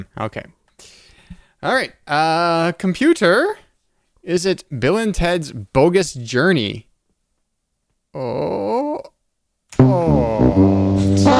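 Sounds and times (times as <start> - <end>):
speech: 0.0 - 1.0, 1.6 - 3.6, 4.2 - 6.9, 8.1 - 9.1, 9.8 - 11.3
person groaning: 8.2 - 9.2, 9.8 - 11.0.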